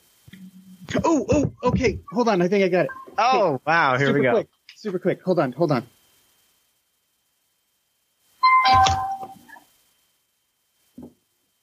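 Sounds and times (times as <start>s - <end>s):
speech: 0.9s - 5.9s
doorbell chiming: 8.6s - 9.2s.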